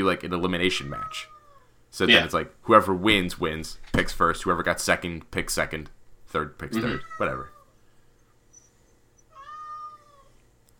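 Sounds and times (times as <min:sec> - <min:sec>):
speech: 0:00.0 - 0:07.5
low steady hum: 0:00.0 - 0:10.7
cat meowing loudly: 0:00.9 - 0:02.2, 0:06.8 - 0:07.7, 0:09.3 - 0:10.4.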